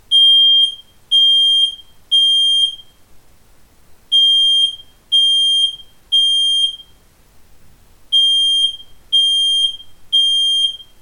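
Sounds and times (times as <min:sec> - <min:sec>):
Jalo Kupu 10 smoke detector alarm: 0:00.1 - 0:03.0, 0:04.1 - 0:07.0, 0:08.1 - 0:10.9.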